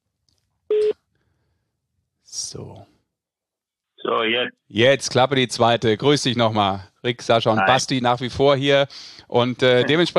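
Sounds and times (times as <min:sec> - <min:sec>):
short mid-pitch telephone tone as a phone call is placed: 0:00.7 - 0:01.0
speech: 0:02.5 - 0:02.9, 0:04.1 - 0:10.1.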